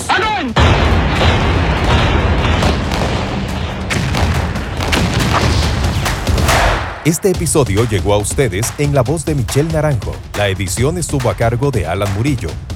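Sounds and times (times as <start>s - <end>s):
continuous rumbling roar: 0.8s - 6.6s
cannon fire explosions: 0.8s - 7.0s
speech: 7.1s - 12.7s.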